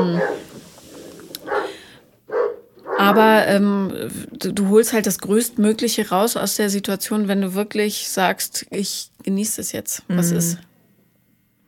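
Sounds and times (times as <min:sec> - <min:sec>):
dogs barking excitedly after doorbell: 0:00.0 - 0:00.6, 0:01.3 - 0:03.4
speech: 0:00.0 - 0:00.6, 0:03.0 - 0:10.7
low hum: 0:00.0 - 0:11.6.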